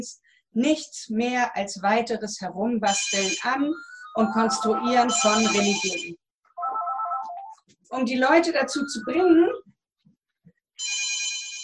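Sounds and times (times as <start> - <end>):
speech: 0.0 - 6.2, 7.9 - 9.6
telephone ringing: 2.9 - 7.6, 8.4 - 9.6, 10.8 - 11.6.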